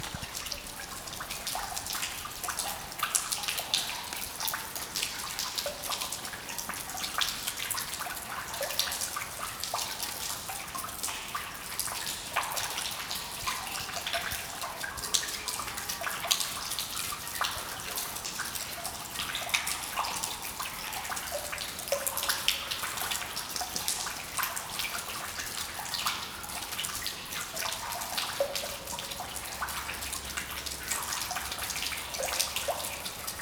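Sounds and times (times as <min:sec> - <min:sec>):
water dripping: 0:00.0 - 0:33.4.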